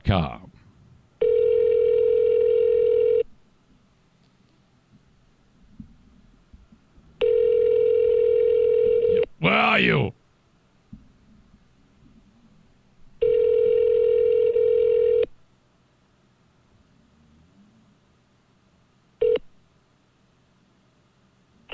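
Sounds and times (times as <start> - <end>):
speech: 0.1 - 0.4
loud steady electronic telephone tone: 1.2 - 3.3, 7.2 - 9.3, 13.2 - 15.3, 19.2 - 19.4.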